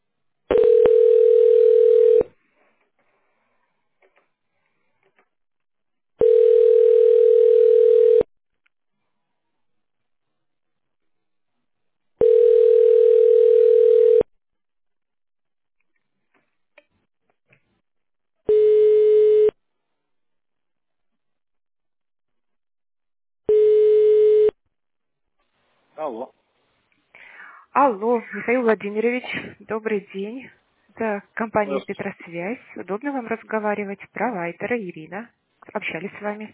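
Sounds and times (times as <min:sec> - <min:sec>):
telephone tone while a call is transferred to an extension: 0:00.5 - 0:02.3, 0:06.2 - 0:08.3, 0:12.2 - 0:14.3, 0:18.5 - 0:19.6, 0:23.5 - 0:24.6
speech: 0:27.9 - 0:36.5.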